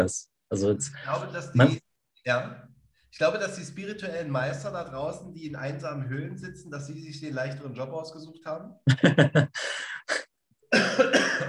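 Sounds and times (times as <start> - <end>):
speech: 0.0 - 11.2
laughter: 8.8 - 9.6
person coughing: 10.1 - 11.4.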